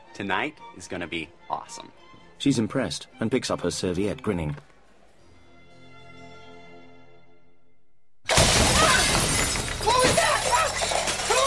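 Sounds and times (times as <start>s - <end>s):
speech: 0.2s - 4.7s
bedroom window glass shattering: 8.3s - 11.4s
crackling shards and tinkling glass debris: 8.7s - 11.4s.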